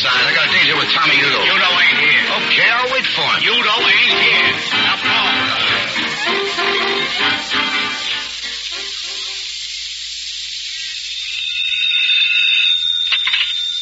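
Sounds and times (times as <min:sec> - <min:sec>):
general alarm bell ringing: 0:00.0 - 0:08.0, 0:11.3 - 0:13.7
speech: 0:00.1 - 0:05.1.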